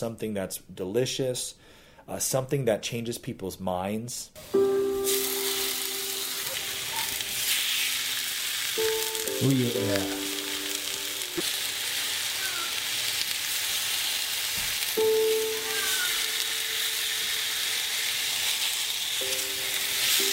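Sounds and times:
speech: 0.0s - 5.2s, 9.4s - 10.2s, 11.4s - 11.6s
meat searing in a hot pan: 4.4s - 20.3s.

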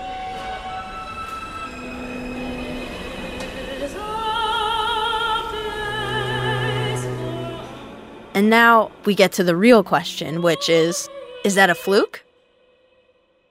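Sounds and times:
MTA subway train motor melody while accelerating: 0.0s - 11.0s
speech: 8.4s - 12.2s.

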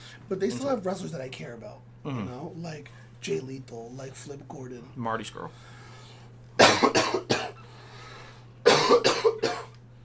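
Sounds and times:
low steady hum: 0.0s - 10.0s
speech: 0.3s - 5.8s
loud coughing fit with harsh coughs: 6.6s - 7.6s, 8.6s - 9.8s.

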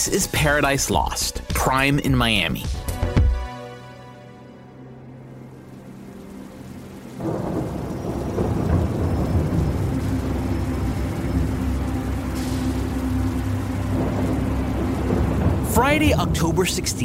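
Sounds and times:
speech: 0.0s - 3.2s, 16.0s - 17.0s
heavy rainstorm downpour: 4.9s - 17.0s
low rumbling thunder: 5.6s - 17.0s.

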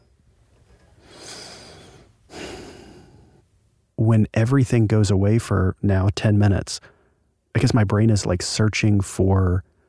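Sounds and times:
loud breathing through the nose: 0.8s - 3.4s
speech: 4.1s - 6.9s, 7.6s - 9.7s.

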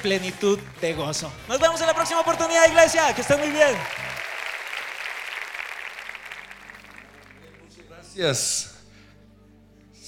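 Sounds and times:
speech: 0.0s - 4.1s, 8.2s - 8.7s
audience applause: 1.6s - 7.8s.

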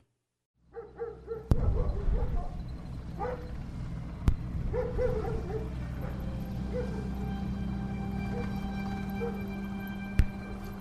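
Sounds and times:
low droning background: 0.6s - 10.7s
dog barking: 0.7s - 2.6s, 3.2s - 3.5s, 4.7s - 7.2s, 9.2s - 9.4s.

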